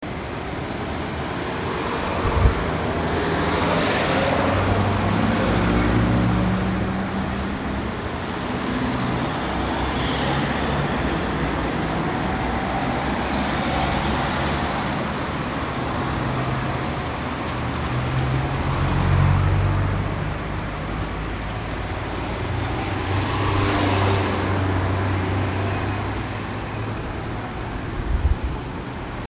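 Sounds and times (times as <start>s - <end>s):
traffic: 0.0s - 29.2s.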